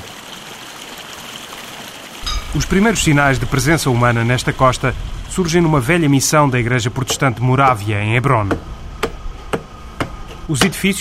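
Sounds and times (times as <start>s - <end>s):
small waterfall of clean cold water beside the Hebron fjord: 0.0s - 8.6s
speech: 2.5s - 8.8s, 10.5s - 10.9s.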